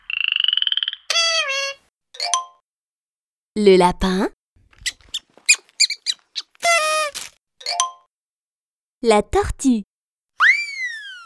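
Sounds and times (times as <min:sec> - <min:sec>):
frog croaking: 0:00.0 - 0:01.8, 0:04.8 - 0:07.2
speech: 0:03.6 - 0:04.4, 0:09.0 - 0:09.9.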